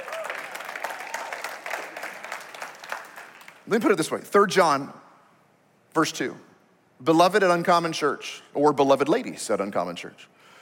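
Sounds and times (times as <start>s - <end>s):
crowd applauding in a large room: 0.0s - 3.7s
speech: 3.7s - 5.0s, 6.0s - 10.5s.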